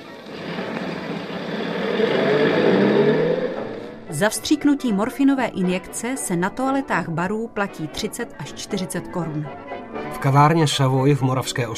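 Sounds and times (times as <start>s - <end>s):
car engine revving and accelerating: 0.0s - 4.7s
speech: 4.2s - 11.7s.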